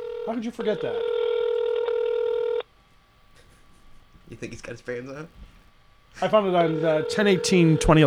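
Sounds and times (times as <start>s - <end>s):
electronic telephone dialing tone while placing a call: 0.0s - 2.6s, 6.3s - 8.0s
speech: 0.3s - 1.2s, 4.3s - 5.4s, 6.2s - 8.0s.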